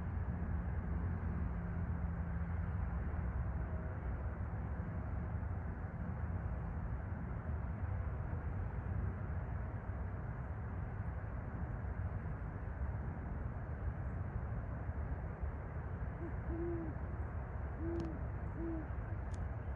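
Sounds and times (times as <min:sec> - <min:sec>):
steady low rumble: 0:00.0 - 0:19.7
great horned owl hooting: 0:16.2 - 0:17.0, 0:17.8 - 0:19.0.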